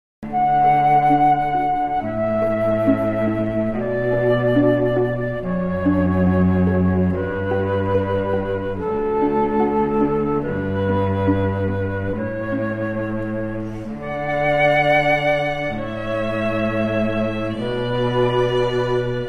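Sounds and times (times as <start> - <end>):
trio playing a canon: 0.3 - 19.2.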